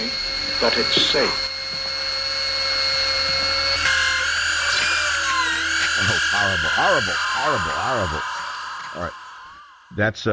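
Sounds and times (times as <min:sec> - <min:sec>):
dental drill drilling into a healthy tooth: 0:00.0 - 0:10.0
speech: 0:00.6 - 0:01.4, 0:06.4 - 0:08.3, 0:09.0 - 0:09.2, 0:09.9 - 0:10.3.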